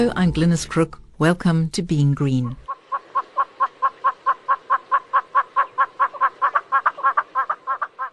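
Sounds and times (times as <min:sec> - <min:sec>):
speech: 0:00.2 - 0:02.7
southern yellow-billed hornbill calling: 0:02.6 - 0:08.1.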